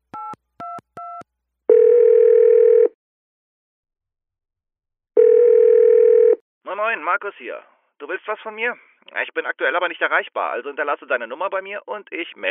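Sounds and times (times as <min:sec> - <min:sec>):
telephone ringing tones: 0:00.2 - 0:03.0, 0:05.2 - 0:06.4
speech: 0:06.8 - 0:12.4.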